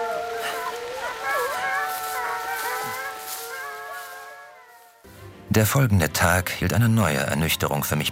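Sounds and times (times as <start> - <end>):
wolves howling in chorus: 0.0 - 5.1
speech: 5.5 - 8.0.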